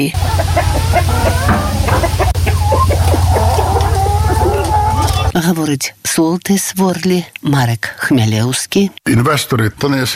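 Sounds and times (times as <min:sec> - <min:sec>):
speech: 0:00.0 - 0:02.4, 0:05.4 - 0:10.1
steady low mechanical hum: 0:00.0 - 0:05.3
crowded flock of chickens clucking and squawking: 0:00.0 - 0:05.4.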